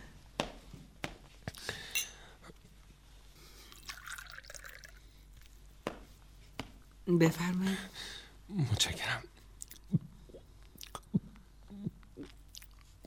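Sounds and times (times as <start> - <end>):
soft glass clinks: 1.9 - 2.3
water poured into a glass: 3.8 - 5.0
speech: 7.1 - 10.0.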